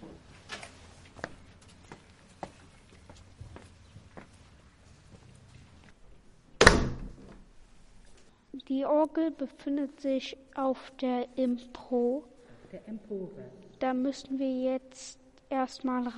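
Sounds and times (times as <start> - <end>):
footsteps shuffling across a hard floor in a church: 1.0 - 6.0
heavy wooden church door swinging shut with a booming thud: 6.6 - 7.4
speech: 8.7 - 16.1.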